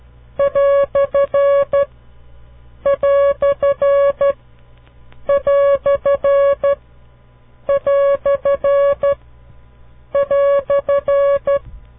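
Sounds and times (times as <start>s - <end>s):
Morse code quotation mark beeps: 0.4s - 1.9s, 2.9s - 4.4s, 5.3s - 6.8s, 7.7s - 9.2s, 10.2s - 11.6s.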